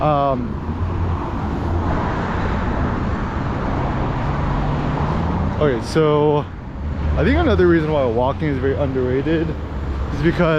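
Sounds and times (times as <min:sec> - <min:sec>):
speech: 0:00.0 - 0:00.8, 0:05.6 - 0:06.6, 0:07.2 - 0:10.5
road traffic noise with low engine rumble and hiss from vehicles: 0:00.0 - 0:10.5.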